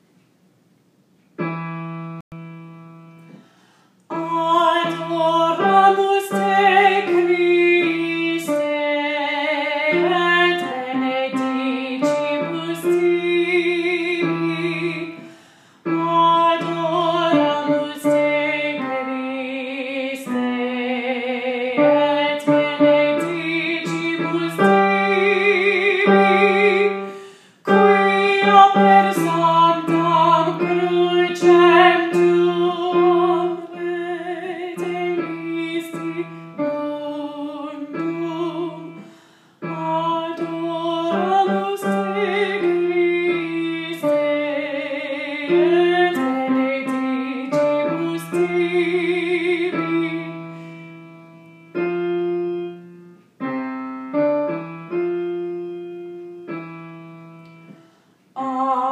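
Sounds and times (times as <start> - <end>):
alto voice singing choir practice track: 4.1 - 55.9, 58.4 - 58.9.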